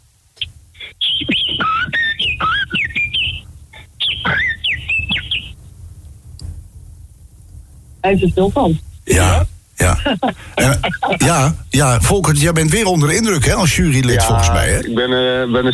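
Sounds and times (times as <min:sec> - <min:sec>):
man whistling an imitation of blackbird song: 0:00.4 - 0:05.6
laughter: 0:00.8 - 0:05.2, 0:09.1 - 0:15.7
speech: 0:08.0 - 0:15.7.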